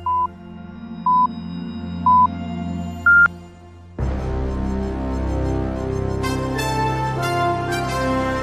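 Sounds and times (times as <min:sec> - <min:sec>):
music: 0:00.0 - 0:08.4
electronic radio time signal pips marking the hour: 0:03.1 - 0:03.3.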